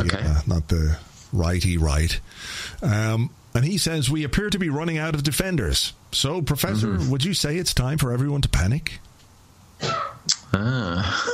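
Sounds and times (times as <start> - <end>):
speech: 0.0 - 9.1, 9.8 - 11.3
distant sneeze: 9.8 - 10.2.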